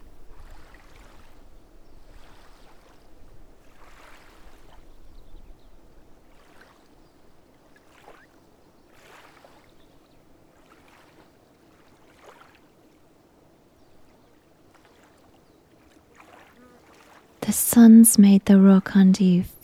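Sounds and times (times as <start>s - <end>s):
water lapping on a shore: 0.0s - 19.6s
speech: 17.5s - 19.6s.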